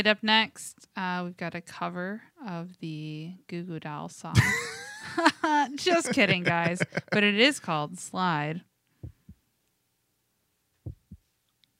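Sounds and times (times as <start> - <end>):
speech: 0.0 - 8.7
faint hiss: 0.0 - 11.7
laughter: 4.4 - 7.5
slow deep paired heartbeat thumps: 9.0 - 9.4, 10.8 - 11.3.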